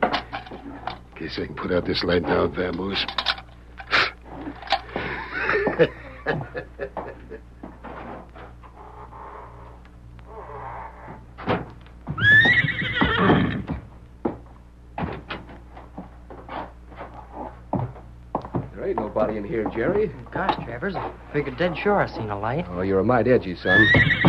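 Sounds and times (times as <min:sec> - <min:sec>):
horse hooves clopping on a hard floor: 0:00.0 - 0:03.4, 0:04.2 - 0:06.0, 0:06.9 - 0:22.4, 0:23.7 - 0:24.2
speech: 0:01.2 - 0:03.3, 0:05.8 - 0:07.5, 0:19.2 - 0:24.2
laughter: 0:04.9 - 0:07.5
horse whinnying: 0:12.2 - 0:13.8, 0:23.7 - 0:24.2.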